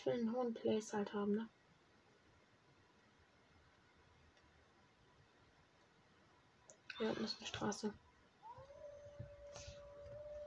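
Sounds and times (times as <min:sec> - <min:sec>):
speech: 0:00.0 - 0:01.6, 0:07.0 - 0:08.1
wolf howling: 0:08.4 - 0:10.4.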